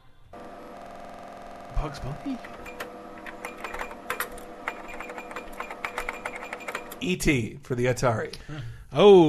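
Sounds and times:
speech: 0:01.8 - 0:02.7, 0:07.0 - 0:09.2
rapid keyboard typing from a typing game: 0:02.4 - 0:07.1.

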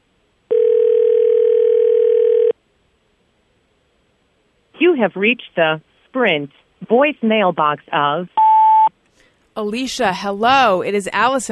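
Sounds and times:
steady telephone tone while a call is placed: 0:00.5 - 0:02.6, 0:08.4 - 0:08.9
speech: 0:04.9 - 0:08.4, 0:09.6 - 0:11.5.

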